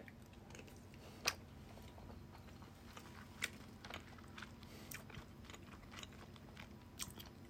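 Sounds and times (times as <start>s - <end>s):
person chewing very spicy curry with wet mouth sounds: 0.0s - 7.4s.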